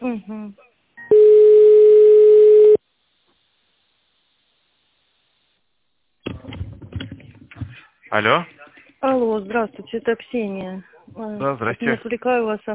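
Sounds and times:
buzzing telephone tone during a call transfer: 1.0 - 2.8
speech: 8.2 - 8.6, 9.3 - 12.7.

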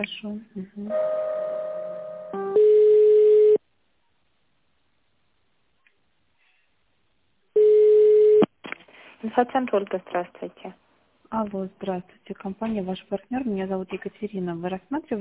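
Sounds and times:
speech: 0.0 - 1.4, 9.3 - 15.1
telephone tones while a call is transferred: 2.4 - 3.6, 7.6 - 8.4.

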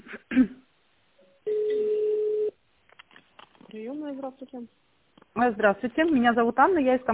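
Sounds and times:
steady telephone ringback tone: 1.4 - 2.5
speech: 4.2 - 7.1.

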